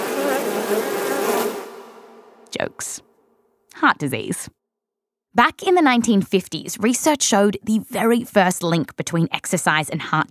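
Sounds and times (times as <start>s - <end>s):
dense swarm of bees buzzing: 0.0s - 2.2s
speech: 2.5s - 3.1s, 3.7s - 4.6s, 5.3s - 10.2s.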